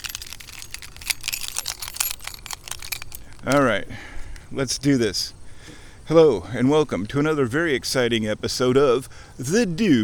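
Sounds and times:
bunch of keys jingling: 0.0s - 3.8s
speech: 3.4s - 10.0s.

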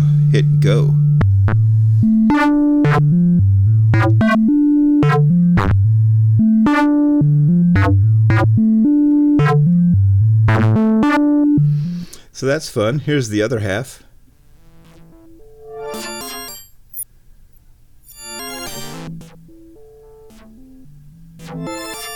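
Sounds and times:
synthesizer oscillator output playing a running sequence of bright plucky tones: 0.0s - 11.9s, 14.6s - 16.7s, 18.1s - 22.1s
deep pulsing synthesizer bass line: 0.0s - 12.0s, 14.6s - 15.7s, 19.0s - 21.9s
speech: 0.3s - 1.6s, 2.3s - 4.6s, 12.4s - 14.0s.

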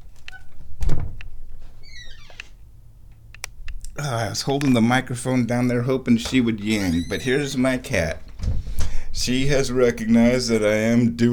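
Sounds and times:
door opening thunk: 0.5s - 1.3s, 6.2s - 7.4s, 8.2s - 9.2s
faint high door squeaks: 1.8s - 2.6s, 6.7s - 7.6s
speech: 4.0s - 8.3s, 9.2s - 11.3s.

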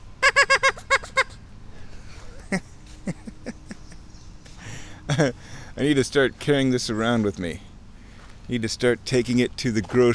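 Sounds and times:
duck call blown on a creek sandbar: 0.2s - 1.4s
speech: 5.2s - 7.7s, 8.5s - 10.1s.

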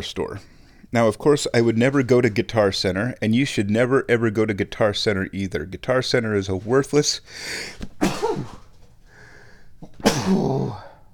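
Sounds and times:
speech: 0.0s - 8.6s, 9.8s - 10.9s
person sneezing loudly: 7.5s - 8.7s, 9.8s - 11.0s.

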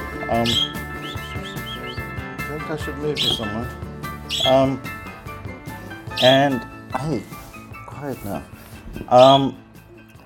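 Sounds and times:
speech: 0.3s - 0.8s, 2.6s - 5.0s, 6.2s - 7.4s, 8.0s - 9.6s
small pet bird chirping and tweeting: 0.3s - 4.8s, 6.1s - 6.6s, 9.1s - 9.6s.

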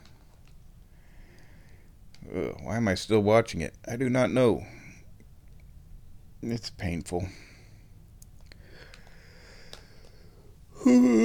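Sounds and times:
speech: 2.2s - 4.8s, 6.4s - 7.5s, 10.8s - 11.2s
person yawning with a voiced groan: 10.8s - 11.2s.

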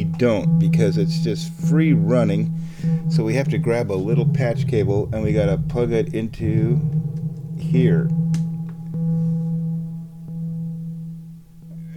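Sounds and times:
steady low synthesizer drone: 0.0s - 11.8s
speech: 0.2s - 8.2s
repeating synthesizer delay echo blips: 2.8s - 9.4s.

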